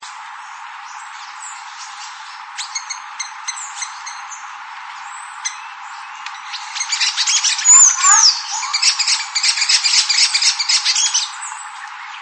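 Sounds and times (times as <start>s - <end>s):
bird chirping and twittering: 0.4s - 12.2s.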